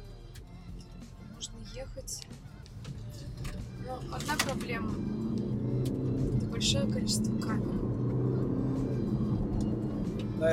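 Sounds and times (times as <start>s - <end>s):
Range Rover Evoque SUV engine rumble accelerating on a road: 0.0s - 10.5s
road noise from a Range Rover Evoque SUV accelerating: 0.0s - 10.5s
speech: 1.8s - 2.5s, 3.2s - 8.0s.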